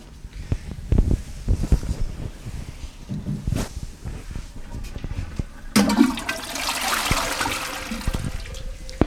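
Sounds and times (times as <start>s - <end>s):
clattering and handling noises: 0.6s - 5.7s
toilet flushing: 5.4s - 9.0s
water gurgling and swirling as the toilet bowl drains: 5.7s - 9.0s.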